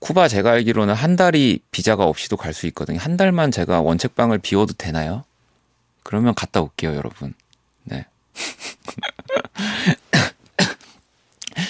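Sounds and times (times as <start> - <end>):
speech: 0.1 - 5.3, 6.0 - 10.0
person coughing harshly: 9.7 - 11.6
throat clearing: 10.1 - 11.6.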